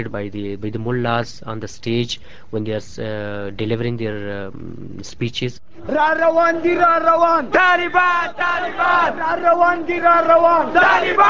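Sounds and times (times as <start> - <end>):
speech: 0.0 - 11.2
large crowd chanting in unison at a demonstration: 5.8 - 11.2.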